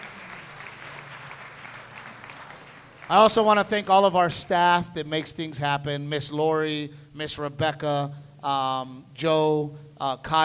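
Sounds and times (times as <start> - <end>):
crowd applauding: 0.0 - 4.3
speech: 3.1 - 10.4.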